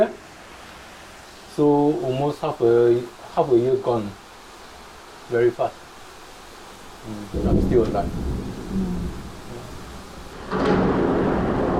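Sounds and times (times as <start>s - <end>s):
rain hissing: 0.0s - 11.7s
speech: 1.6s - 4.2s, 5.3s - 5.8s, 7.0s - 8.9s
thunder rumbling through a storm: 7.1s - 11.7s.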